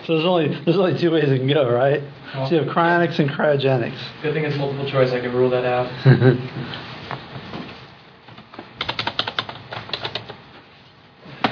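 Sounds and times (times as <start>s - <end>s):
speech: 0.0s - 6.9s
typing on a computer keyboard: 8.8s - 10.4s.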